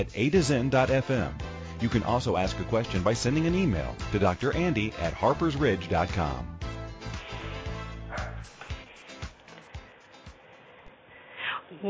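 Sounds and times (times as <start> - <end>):
speech: 0.0 - 6.6
dog barking in quick yapping bursts: 8.1 - 8.5.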